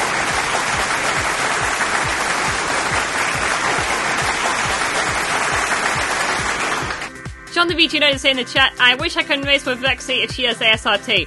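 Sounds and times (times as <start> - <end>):
crowd applauding: 0.0 - 7.1
speech: 7.6 - 11.2.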